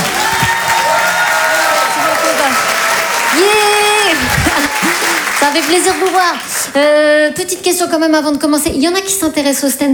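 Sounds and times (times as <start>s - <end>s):
audience applause and cheering in a comedy theatre: 0.0s - 7.0s
speech: 5.5s - 9.9s.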